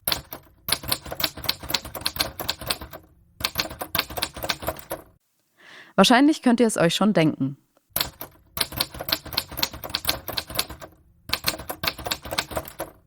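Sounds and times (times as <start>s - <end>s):
typewriter keys clacking: 0.0s - 5.2s, 8.0s - 13.0s
speech: 6.0s - 7.6s.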